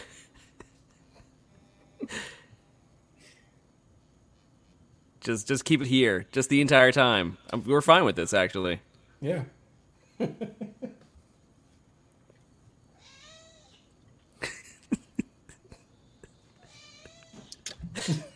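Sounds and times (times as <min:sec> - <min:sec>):
speech: 0:05.2 - 0:09.6
cat meowing: 0:13.0 - 0:13.8.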